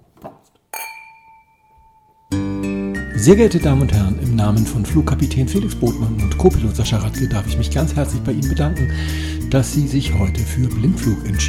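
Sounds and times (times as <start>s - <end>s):
wine glasses clinking in a toast: 0.7s - 2.5s
speech: 3.2s - 11.4s.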